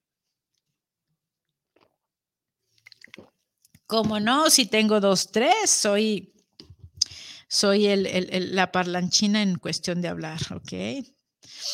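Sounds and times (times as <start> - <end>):
person slurping and swallowing water: 1.7 - 2.1, 2.7 - 3.8
person sipping water: 1.7 - 3.9
speech: 3.9 - 6.3, 7.5 - 11.7.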